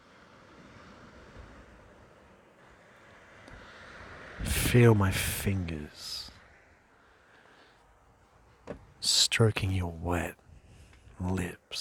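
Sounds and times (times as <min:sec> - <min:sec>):
ocean waves washing onto a beach: 0:00.0 - 0:07.7
speech: 0:04.7 - 0:06.2, 0:09.4 - 0:10.4, 0:11.2 - 0:11.7.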